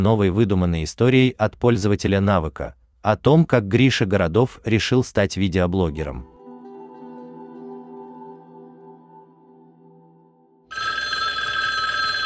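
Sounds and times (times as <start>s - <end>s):
speech: 0.0s - 6.3s
electric school bell ringing for break: 10.7s - 12.2s.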